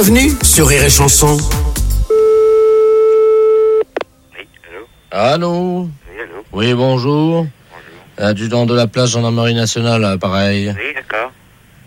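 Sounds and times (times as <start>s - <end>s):
speech: 0.0s - 1.6s, 5.1s - 7.6s, 8.2s - 11.4s
telephone busy tone after a call is hung up: 2.1s - 5.3s.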